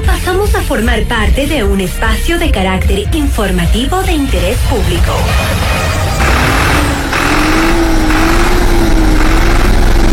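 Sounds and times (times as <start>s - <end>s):
speech: 0.4s - 6.7s
tractor engine running with mechanical clatter: 5.4s - 10.1s.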